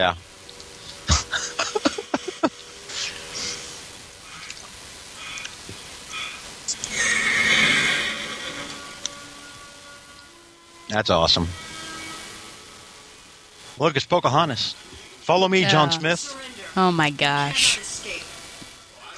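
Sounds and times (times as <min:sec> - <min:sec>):
speech: 0:00.0 - 0:00.2, 0:10.9 - 0:11.6, 0:13.8 - 0:17.7
laughter: 0:01.1 - 0:03.5, 0:15.6 - 0:16.1
horse neighing: 0:06.8 - 0:09.0.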